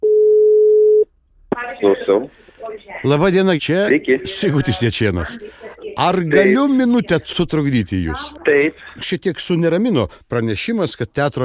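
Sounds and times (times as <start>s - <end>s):
steady mid-pitched telephone tone on a call: 0.0s - 1.1s
speech: 1.8s - 11.4s.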